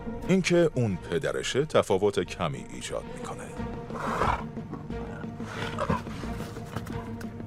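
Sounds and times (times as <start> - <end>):
speech: 0.3 - 4.6
lion roaring: 3.9 - 6.3
lion growling: 3.9 - 7.2.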